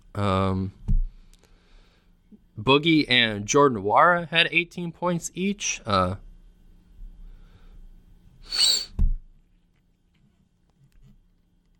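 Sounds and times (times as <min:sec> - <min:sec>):
speech: 0:00.2 - 0:00.8, 0:02.6 - 0:06.2
sharp hissing intake of breath before a sneeze: 0:08.4 - 0:09.0.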